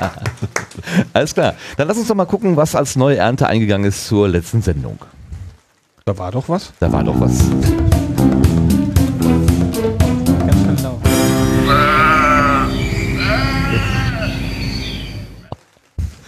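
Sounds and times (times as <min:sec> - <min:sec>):
speech: 0:00.0 - 0:05.2, 0:06.1 - 0:08.4
rapid rhythmic pulsing: 0:06.8 - 0:11.6
sheep bleating: 0:11.5 - 0:14.5.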